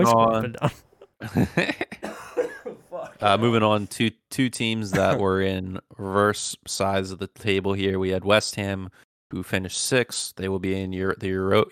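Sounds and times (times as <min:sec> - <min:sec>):
speech: 0:00.0 - 0:02.2, 0:03.2 - 0:11.6
harsh coughs: 0:01.9 - 0:03.3, 0:04.9 - 0:05.3.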